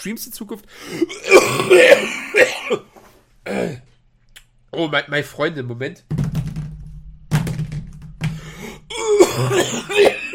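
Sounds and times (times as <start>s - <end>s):
speech: 0.0s - 3.9s, 4.7s - 6.3s
person clearing throat into a microphone: 1.1s - 3.9s, 8.9s - 10.3s
person coughing into a microphone: 1.1s - 3.9s, 8.9s - 10.3s
thumps: 6.1s - 8.5s.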